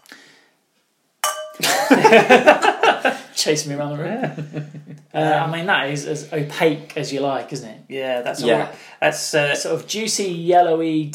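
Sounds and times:
glasses clinking together in a toast: 1.2s - 1.8s
laughter: 1.6s - 3.3s, 4.0s - 5.5s
speech: 1.6s - 11.1s.

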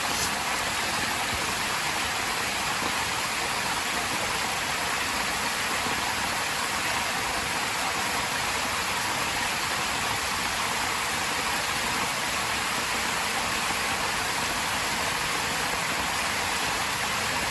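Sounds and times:
steady rain falling in the trees: 0.0s - 17.4s.

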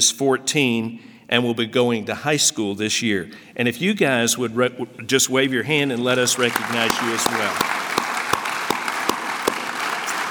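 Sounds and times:
speech: 0.0s - 7.7s
audience clapping in a church chapel: 6.3s - 10.2s.

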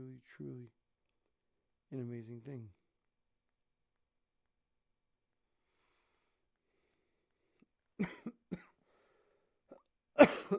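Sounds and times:
speech: 1.9s - 2.8s
person coughing harshly: 8.0s - 8.8s, 10.2s - 10.5s.

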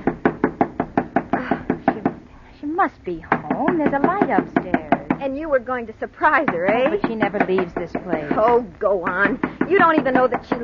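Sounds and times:
loud knocks on a door: 0.0s - 2.2s, 3.2s - 5.2s, 6.3s - 10.6s
speech: 2.8s - 10.6s.

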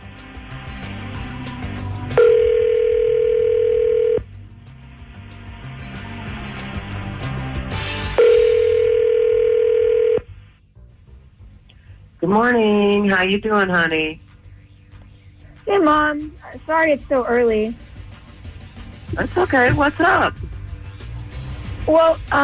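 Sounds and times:
ringback tones of an outgoing telephone call: 2.2s - 4.2s, 8.2s - 10.3s
speech: 12.3s - 14.2s, 15.7s - 17.8s, 19.2s - 20.5s, 21.9s - 22.4s.

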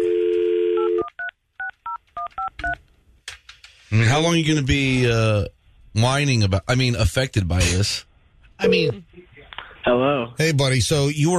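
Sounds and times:
phone dial tone: 0.0s - 1.2s
speech: 3.9s - 9.1s, 9.8s - 11.3s.

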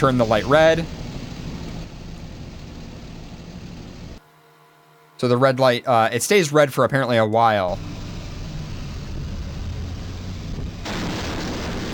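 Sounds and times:
speech: 0.0s - 1.0s, 5.2s - 8.0s
truck crashing into a low railway bridge: 10.5s - 11.9s.

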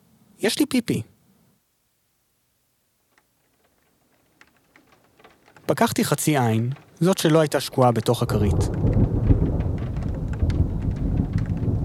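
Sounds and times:
speech: 0.4s - 1.1s, 5.7s - 8.9s
soft rain pattering in the street: 3.1s - 11.8s
distant muffled thunder at night: 6.7s - 11.8s.

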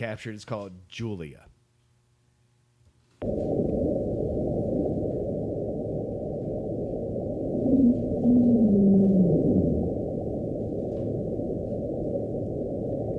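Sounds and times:
speech: 0.0s - 1.5s
underwater rumble: 3.2s - 13.1s
low drawn-out tonal moan: 7.5s - 10.9s.

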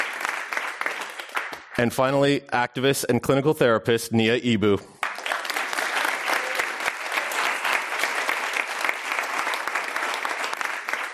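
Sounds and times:
crowd applauding for a panel of activists: 0.0s - 1.8s, 5.0s - 11.1s
speech: 1.8s - 5.0s.

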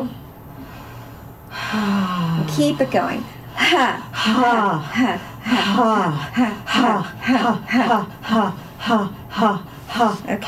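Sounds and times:
faint low hum: 0.0s - 10.4s
soft airy nasal breath: 0.6s - 2.4s
speech: 1.7s - 10.4s.

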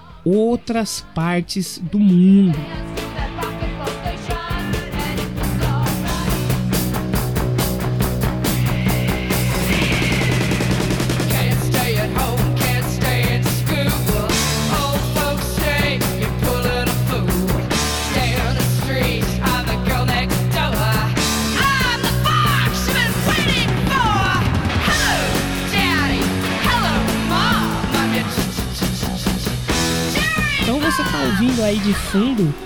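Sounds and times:
1970s rock song with bass, drums, high-pitched vocals and guitar: 0.0s - 32.6s
speech: 0.2s - 2.9s, 31.9s - 32.6s.

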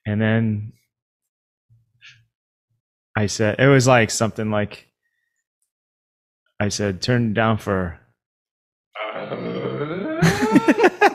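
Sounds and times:
speech: 0.1s - 0.8s, 3.2s - 4.9s, 6.6s - 8.0s, 9.2s - 9.9s
low drawn-out vocal grunt with sputtering pulses: 9.0s - 10.8s
laughter: 10.1s - 11.1s.

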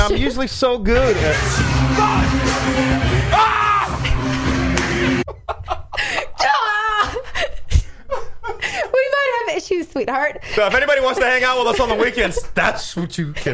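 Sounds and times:
speech: 0.0s - 4.4s, 9.6s - 13.5s
person screaming in a roaring monster-like growl: 3.3s - 4.0s
laughter: 5.3s - 9.0s, 10.7s - 12.6s.

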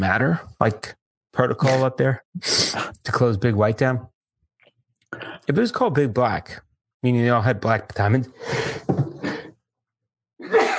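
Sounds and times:
speech: 0.0s - 4.1s, 5.1s - 9.4s
forceful breathy sneezes: 1.6s - 3.0s.

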